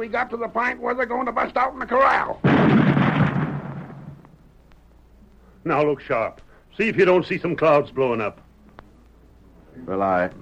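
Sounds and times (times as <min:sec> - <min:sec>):
speech: 0:00.0 - 0:03.3, 0:05.6 - 0:08.4, 0:09.8 - 0:10.4
deep booming blast from a rain-making gun fired after its fuse is lit: 0:02.4 - 0:04.4.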